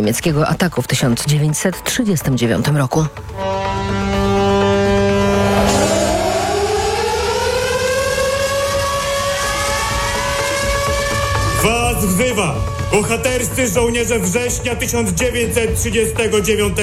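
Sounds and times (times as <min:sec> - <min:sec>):
speech: 0:00.0 - 0:04.0, 0:12.0 - 0:16.8
air-raid sirens wailing: 0:03.2 - 0:15.6.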